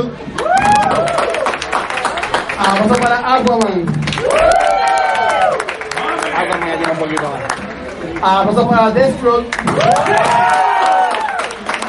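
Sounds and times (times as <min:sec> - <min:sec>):
speech: 0:00.0 - 0:01.0, 0:02.6 - 0:04.7, 0:06.4 - 0:07.6, 0:08.2 - 0:10.6
audience whooping and cheering: 0:00.3 - 0:02.3, 0:04.1 - 0:06.8, 0:09.6 - 0:11.8
live audience at a cosplay event clapping: 0:00.3 - 0:08.4, 0:09.3 - 0:11.8.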